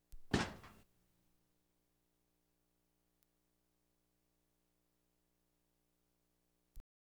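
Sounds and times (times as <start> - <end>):
refrigerator door closing: 0.3 - 0.8.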